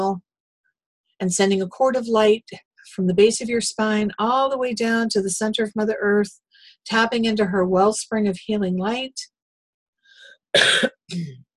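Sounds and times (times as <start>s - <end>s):
speech: 1.2s - 9.3s, 10.5s - 11.4s
person coughing during a guided meditation: 10.6s - 11.4s.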